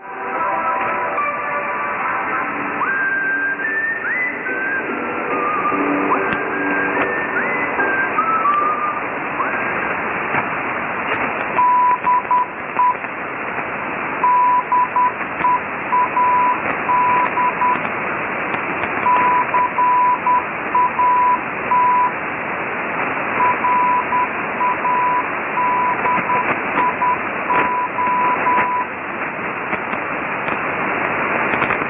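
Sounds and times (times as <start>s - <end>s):
hissy crackling shortwave radio static: 0.0s - 31.8s
steady high Morse code tone keying a station ID: 2.8s - 9.8s, 11.5s - 13.0s, 14.2s - 17.9s, 19.0s - 22.2s, 23.4s - 29.0s.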